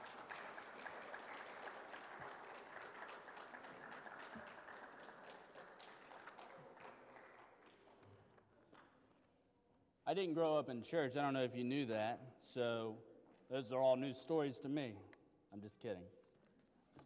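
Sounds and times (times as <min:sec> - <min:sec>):
audience applauding: 0:00.0 - 0:08.0
speech: 0:10.1 - 0:16.2.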